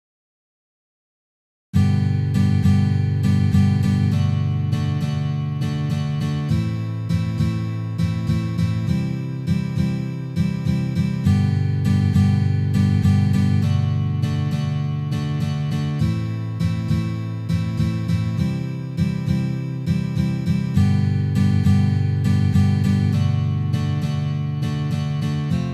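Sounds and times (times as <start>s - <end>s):
standard combined strumming pattern: 1.8s - 25.7s.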